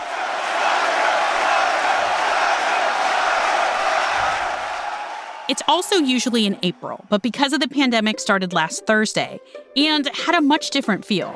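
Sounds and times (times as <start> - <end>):
large crowd of golf spectators cheering and applauding: 0.0 - 7.2
speech: 5.5 - 11.3.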